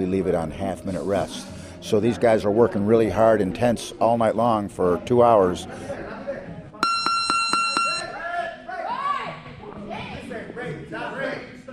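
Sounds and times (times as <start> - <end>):
speech: 0.0 - 6.1
busy chatter and shouting voices in a noisy room: 0.0 - 11.7
gym round timer bell ringing: 6.8 - 8.1.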